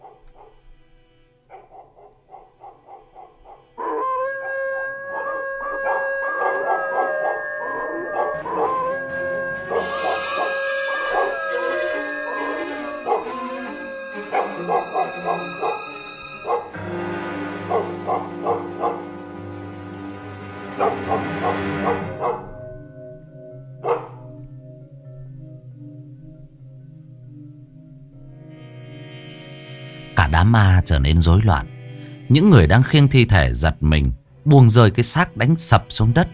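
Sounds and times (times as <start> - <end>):
pack of village dogs barking: 0.0 - 0.6, 1.5 - 13.6, 14.3 - 16.9, 17.5 - 19.3, 20.7 - 22.8, 23.8 - 24.4
pack of village dogs howling: 1.5 - 19.4, 20.6 - 22.9, 23.8 - 24.4
speech: 30.5 - 31.7, 32.3 - 36.3.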